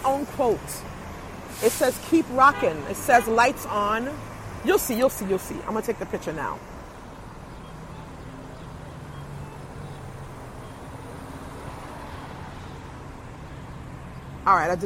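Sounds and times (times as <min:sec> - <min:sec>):
street traffic rumbling outside a car: 0:00.0 - 0:14.8
speech: 0:00.1 - 0:01.0, 0:01.6 - 0:06.7, 0:14.5 - 0:14.8.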